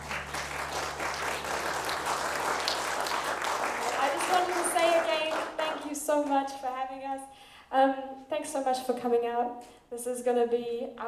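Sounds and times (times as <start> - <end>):
concert crowd applauding the bass player: 0.0 - 5.9
speech: 6.2 - 11.0.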